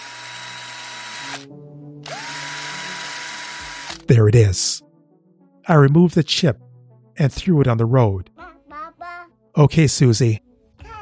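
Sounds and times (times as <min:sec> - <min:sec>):
electric screwdriver whirring on a bolt inside a car: 0:00.0 - 0:04.1
speech: 0:01.3 - 0:01.7, 0:04.1 - 0:04.9, 0:05.7 - 0:08.3, 0:09.6 - 0:10.5.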